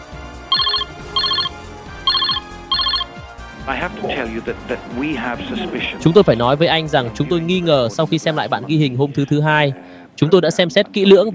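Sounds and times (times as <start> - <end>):
telephone ringing: 0.5 - 3.1
speech: 3.7 - 11.3.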